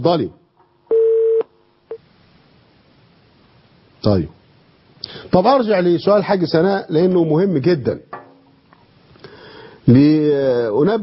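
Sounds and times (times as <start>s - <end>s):
speech: 0.0s - 0.4s, 4.0s - 4.4s, 5.1s - 8.1s, 9.9s - 11.0s
telephone call connecting tones on a call-in line: 0.9s - 1.5s.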